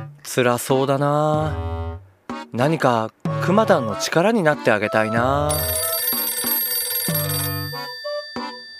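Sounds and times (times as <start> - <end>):
speech: 0.4 - 1.8, 2.5 - 5.9
telephone ringing: 5.5 - 8.7.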